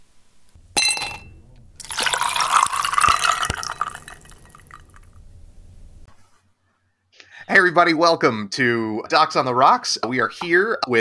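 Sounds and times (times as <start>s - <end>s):
drink pouring into a glass: 0.8s - 5.2s
speech: 7.6s - 10.9s.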